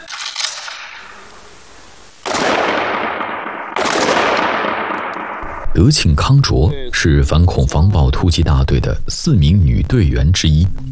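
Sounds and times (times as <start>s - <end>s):
metallic jingle: 0.0s - 1.0s
handgun shots at police special-forces live-fire shooting practice: 2.2s - 5.4s
speech: 5.8s - 10.9s.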